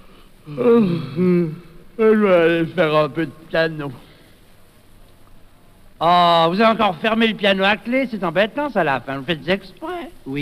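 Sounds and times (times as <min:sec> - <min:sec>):
person yawning: 0:00.4 - 0:01.8
speech: 0:00.5 - 0:04.1, 0:06.0 - 0:10.4.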